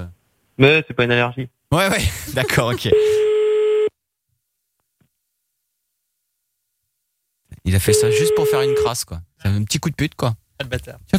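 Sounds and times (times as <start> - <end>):
speech: 0.6 - 3.2, 7.7 - 11.1
telephone line busy tone: 7.9 - 8.9.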